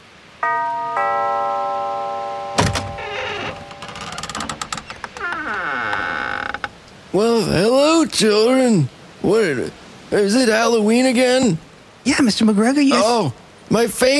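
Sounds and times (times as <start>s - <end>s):
doorbell ding-dong chime: 0.4s - 4.0s
creaking mechanical noises: 2.6s - 6.8s
speech: 7.1s - 14.1s.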